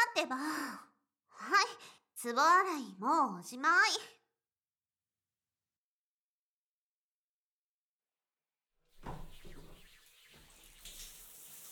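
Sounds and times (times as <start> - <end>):
speech: 0.2 - 4.2
water running and splashing to rinse foam off someone being washed: 9.0 - 11.7.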